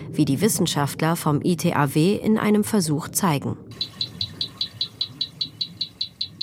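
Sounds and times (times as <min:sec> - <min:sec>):
speech: 0:00.2 - 0:04.0
pile-driving hammer ticking recorded underwater: 0:03.8 - 0:06.4.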